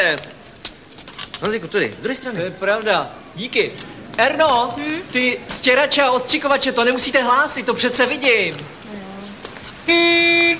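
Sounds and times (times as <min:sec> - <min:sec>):
speech: 0:00.0 - 0:00.4, 0:01.4 - 0:09.0, 0:09.9 - 0:10.5
car horn honking: 0:09.8 - 0:10.5.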